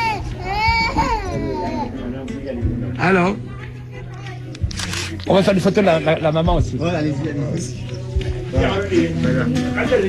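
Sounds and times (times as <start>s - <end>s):
newborn baby crying: 0.0s - 2.1s
speech: 2.5s - 3.5s, 5.2s - 10.0s.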